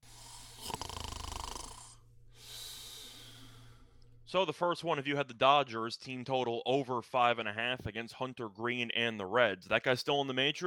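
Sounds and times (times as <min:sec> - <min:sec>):
loud snoring: 0:00.0 - 0:02.0
speech: 0:04.3 - 0:10.6.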